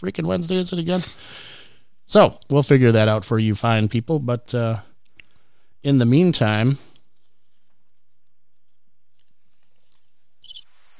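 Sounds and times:
speech: 0.0s - 1.5s, 2.1s - 4.9s, 5.8s - 6.9s
crickets chirping: 10.4s - 10.9s.

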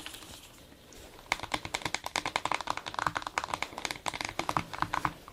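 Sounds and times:
typing on a computer keyboard: 1.3s - 5.2s.

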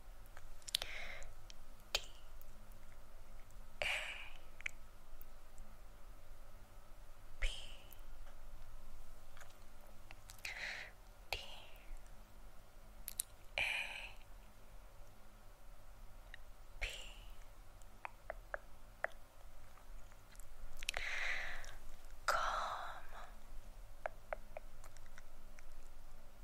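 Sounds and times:
quiet steady low hum: 0.0s - 26.4s
wet mouth clicks and smacks: 13.1s - 13.4s, 20.0s - 21.0s, 24.0s - 25.8s.

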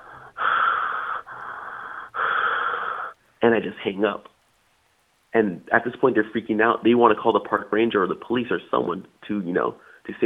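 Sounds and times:
heavy raspy breathing into a telephone: 0.0s - 3.4s, 9.8s - 10.1s
speech: 3.4s - 4.3s, 5.3s - 10.2s.

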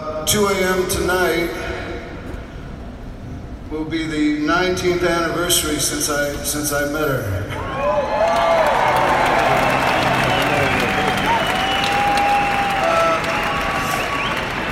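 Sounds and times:
speech: 0.3s - 1.7s, 3.7s - 8.7s
concert crowd whistles and whoops: 7.6s - 14.7s
large concert crowd in Madrid clapping: 8.0s - 14.7s.

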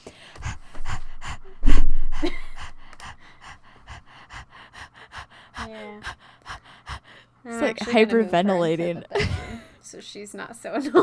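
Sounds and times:
dog panting in quick breathy bursts: 0.0s - 8.0s
speech: 5.7s - 6.2s, 7.4s - 9.3s, 9.9s - 11.0s.

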